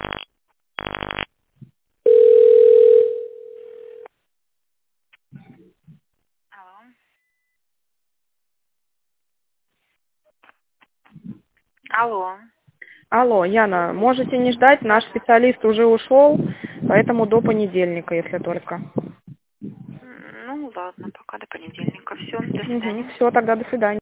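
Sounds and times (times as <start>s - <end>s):
telephone line tones as a call connects: 2.1s - 4.1s
speech: 13.1s - 19.0s, 20.8s - 23.9s.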